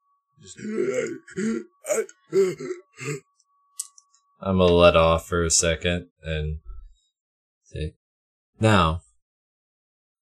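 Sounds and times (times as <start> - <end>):
speech: 0.4 - 3.3, 4.4 - 6.6, 7.7 - 8.0, 8.6 - 9.0
person imitating gasping for air while being choked: 0.6 - 3.2.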